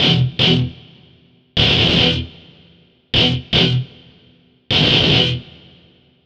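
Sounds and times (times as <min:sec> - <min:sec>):
guitar synths: 0:00.0 - 0:00.7, 0:01.6 - 0:02.3, 0:03.2 - 0:03.9, 0:04.7 - 0:05.4
metal guitar: 0:00.0 - 0:00.9, 0:01.6 - 0:02.4, 0:03.2 - 0:04.1, 0:04.7 - 0:05.8.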